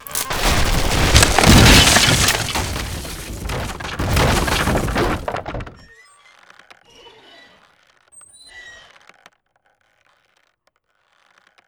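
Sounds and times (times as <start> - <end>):
bridge crumbling: 0.0 - 5.9.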